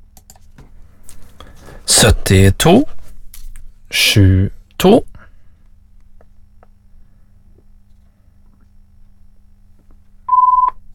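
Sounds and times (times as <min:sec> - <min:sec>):
speech: 0:01.9 - 0:03.0, 0:03.9 - 0:05.1
short electronic telephone ring: 0:10.3 - 0:10.7.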